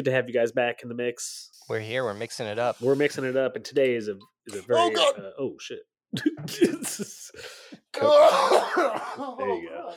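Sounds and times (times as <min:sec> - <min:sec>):
speech: 0:00.0 - 0:09.9
coughing fit with harsh rasping coughs and hacking: 0:06.4 - 0:07.1, 0:08.2 - 0:09.4.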